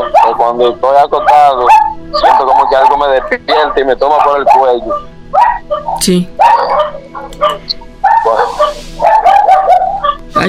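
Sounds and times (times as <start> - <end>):
dogs barking: 0.0 - 10.4
speech: 0.4 - 6.5.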